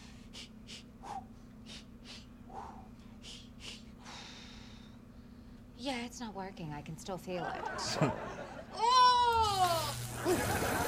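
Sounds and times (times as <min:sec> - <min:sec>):
rhythmic breathing exercise for labor: 0:00.0 - 0:05.7
speech: 0:05.8 - 0:08.4, 0:09.6 - 0:10.8
laughter: 0:07.4 - 0:08.8, 0:10.2 - 0:10.8.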